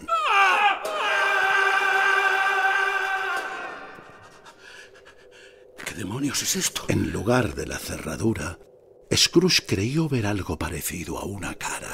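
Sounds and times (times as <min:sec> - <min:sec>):
man screaming in a dark alley: 0:00.0 - 0:04.2
speech: 0:06.2 - 0:11.9.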